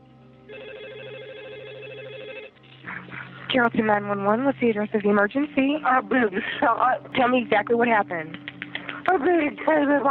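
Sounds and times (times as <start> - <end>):
low hum: 0.0 - 10.0
telephone ringing on an emergency call: 0.5 - 2.8
speech: 3.5 - 8.4, 9.0 - 10.0.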